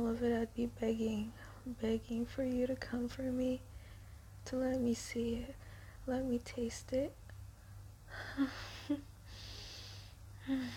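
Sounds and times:
speech: 0.0s - 3.7s, 4.4s - 7.2s, 8.1s - 9.1s, 10.4s - 10.7s
low steady hum: 0.0s - 10.7s
heavy rhythmic breathing: 8.1s - 10.7s.

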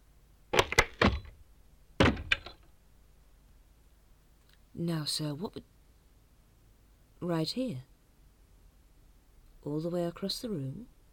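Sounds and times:
door shutting with solid thuds and rattles: 0.6s - 1.4s, 2.0s - 2.7s
speech: 4.8s - 5.7s, 7.2s - 7.9s, 9.6s - 10.9s.

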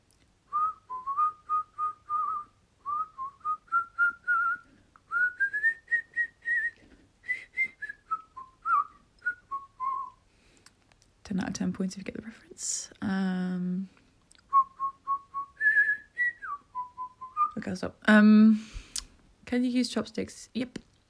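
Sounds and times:
person whistling a melody: 0.5s - 10.2s, 14.5s - 17.6s
speech: 11.4s - 14.0s, 17.6s - 18.7s, 19.5s - 20.8s.

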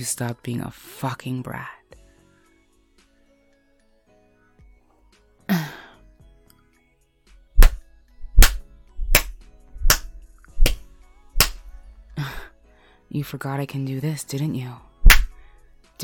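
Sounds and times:
speech: 0.0s - 1.8s, 13.1s - 14.9s
breathy gasp: 5.5s - 6.1s, 12.2s - 13.0s
sharp crisp slaps: 7.6s - 11.7s, 15.0s - 15.4s.

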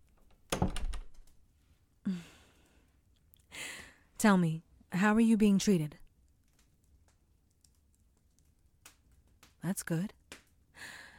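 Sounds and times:
door closing with a solid dull thud: 0.5s - 1.2s
speech: 2.1s - 2.4s, 4.2s - 6.0s, 9.7s - 10.2s.

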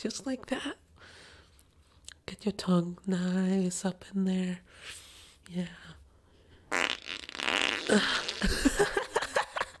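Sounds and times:
speech: 0.0s - 1.2s, 2.3s - 6.0s, 7.9s - 9.0s
long wet fart: 6.7s - 8.9s.

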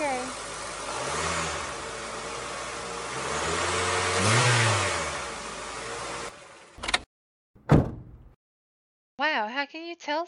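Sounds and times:
car engine with a suspected bad belt revving in a garage: 0.0s - 6.8s
speech: 9.4s - 10.2s.

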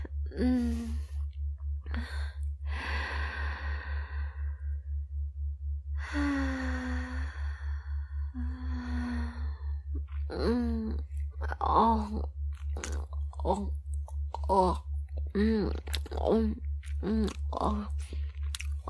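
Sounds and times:
steady pulsing low hum: 0.0s - 18.8s
deep breaths during a guided breathing exercise: 1.9s - 5.0s, 6.0s - 9.9s.

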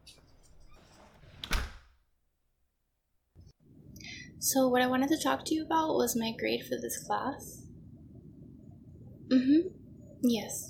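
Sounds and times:
door swinging shut with a solid thunk: 0.8s - 2.0s
speech: 4.4s - 7.6s, 9.4s - 10.6s.

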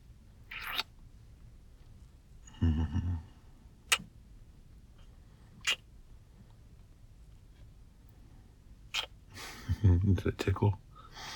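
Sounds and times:
speech: 2.6s - 3.4s, 10.1s - 10.9s
wet kissing smacks on the back of a neck: 3.9s - 4.1s, 5.6s - 5.9s, 8.9s - 9.2s.

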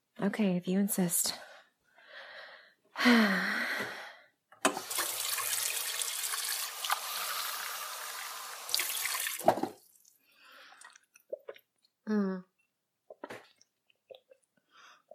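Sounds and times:
speech: 0.2s - 1.4s, 3.0s - 3.6s
water from a tap running into a glass: 4.8s - 11.2s.

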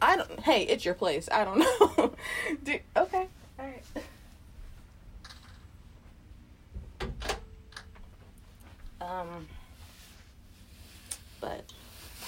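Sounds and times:
speech: 0.4s - 4.0s, 9.0s - 9.6s
swinging door pushed shut with thud: 6.8s - 7.4s
door rattle: 7.0s - 7.5s.

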